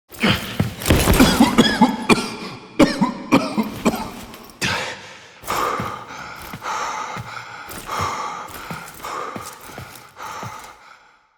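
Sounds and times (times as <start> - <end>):
person coughing: 0.2 - 5.2.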